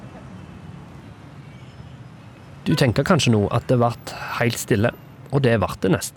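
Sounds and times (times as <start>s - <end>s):
steady hum of city traffic: 0.0s - 6.1s
faint high whine: 2.6s - 5.0s
speech: 2.6s - 6.1s.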